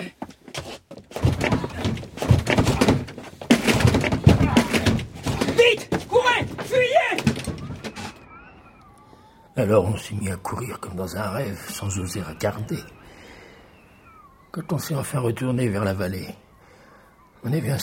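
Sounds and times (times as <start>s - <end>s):
back door being kicked down: 1.1s - 8.2s
speech: 9.6s - 13.0s, 14.6s - 16.4s, 17.4s - 17.8s.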